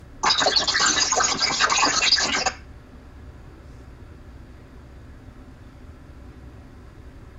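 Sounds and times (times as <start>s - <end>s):
call noise: 0.2s - 2.6s.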